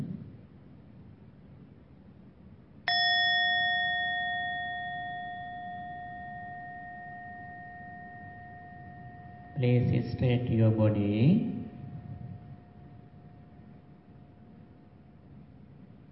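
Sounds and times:
meditation bell struck during a mindfulness session: 0:02.9 - 0:14.8
speech: 0:09.6 - 0:11.5.

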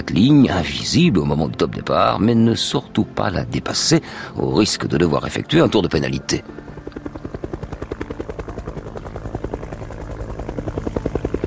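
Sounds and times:
speech: 0:00.1 - 0:06.8
helicopter rotor chop from a helicopter filming a sailing race start: 0:04.6 - 0:11.4.

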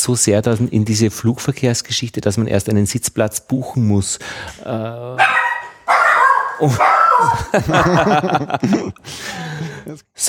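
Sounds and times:
speech: 0:00.0 - 0:05.4, 0:06.6 - 0:10.2
dog barking to greet people arriving in an apartment: 0:05.2 - 0:07.5
light laughter: 0:06.7 - 0:09.8.

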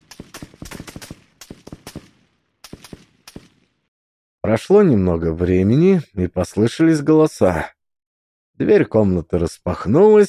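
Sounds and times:
bursts of gunshots from a courtyard by a woodshed: 0:00.0 - 0:03.8
speech: 0:04.5 - 0:07.8, 0:08.6 - 0:10.2.

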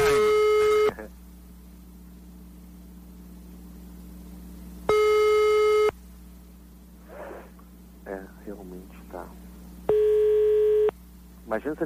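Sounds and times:
telephone busy signal on a call to a landline: 0:00.0 - 0:01.0, 0:04.9 - 0:05.9, 0:09.9 - 0:10.9
faint low hum: 0:00.0 - 0:11.8
speech: 0:11.6 - 0:11.8.

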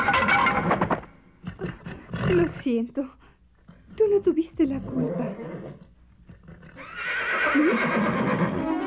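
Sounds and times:
horse neighing: 0:00.0 - 0:02.6, 0:04.7 - 0:08.7
speech: 0:02.3 - 0:03.2, 0:04.0 - 0:05.8, 0:07.5 - 0:08.5.

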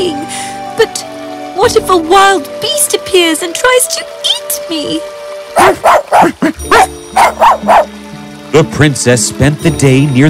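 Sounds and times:
speech: 0:00.0 - 0:07.9, 0:08.5 - 0:10.2
small dog barking: 0:05.6 - 0:07.9.

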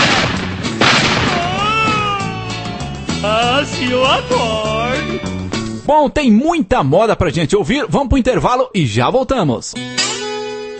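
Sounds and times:
gunshot sound effect: 0:00.0 - 0:02.1
speech: 0:03.6 - 0:10.3.

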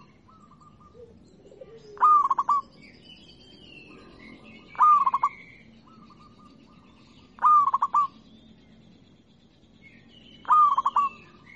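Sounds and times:
local-type zebra dove song: 0:00.0 - 0:03.0, 0:03.8 - 0:08.2, 0:10.3 - 0:11.5.

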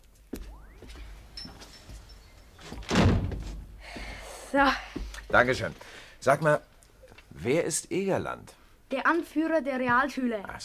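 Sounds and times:
door being closed with a thud: 0:02.6 - 0:03.7
speech: 0:04.5 - 0:06.7, 0:07.4 - 0:10.6.

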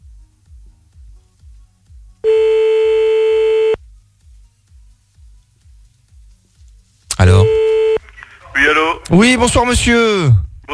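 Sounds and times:
telephone line tone during an outgoing call: 0:02.2 - 0:03.8, 0:07.2 - 0:08.0
speech: 0:09.1 - 0:10.7.

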